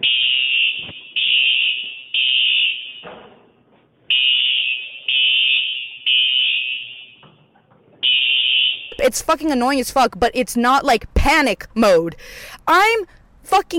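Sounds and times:
smoke detector alarm beeping: 0.0 - 3.2, 4.1 - 7.4, 8.0 - 9.1
speech: 9.1 - 13.7.

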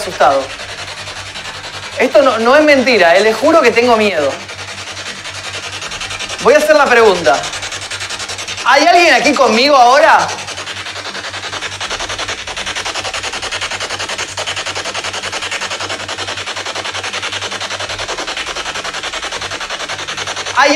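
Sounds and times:
speech: 0.0 - 0.6, 2.0 - 4.4, 6.4 - 7.6, 8.7 - 10.4, 20.6 - 20.7
spirit box radio static sweeping through stations: 2.0 - 12.6.

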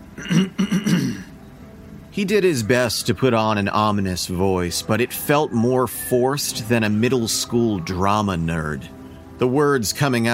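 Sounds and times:
speech: 0.2 - 0.6, 2.2 - 10.3
man clearing his throat with gravelly low-pitched rasps: 0.2 - 1.3.

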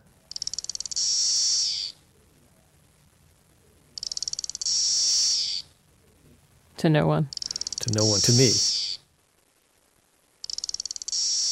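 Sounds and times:
single cicada singing with ticking clicks and high buzz: 0.3 - 2.0, 4.0 - 5.7, 7.3 - 9.0, 10.4 - 11.5
speech: 6.8 - 8.7.

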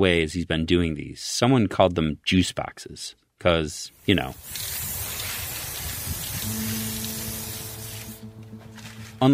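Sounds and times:
speech: 0.0 - 4.9, 9.2 - 9.3
spray paint can hissing during street art: 4.0 - 8.4.

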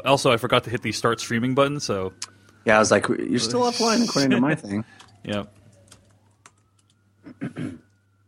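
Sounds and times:
speech: 0.0 - 5.6, 7.4 - 7.8
faint siren wailing: 0.0 - 8.2
keyboard typing clicks and thumps: 5.0 - 7.0.

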